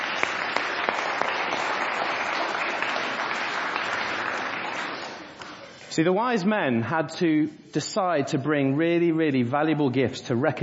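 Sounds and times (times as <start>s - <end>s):
audience clapping for children: 0.0s - 6.0s
speech: 6.0s - 10.6s.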